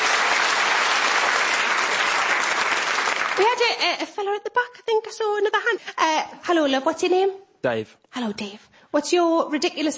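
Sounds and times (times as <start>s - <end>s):
audience applause: 0.0s - 3.7s
speech: 3.4s - 9.9s.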